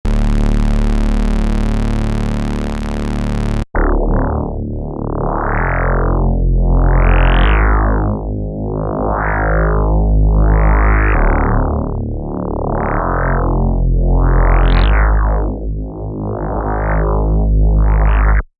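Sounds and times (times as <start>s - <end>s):
fat synth: 0.0s - 18.2s.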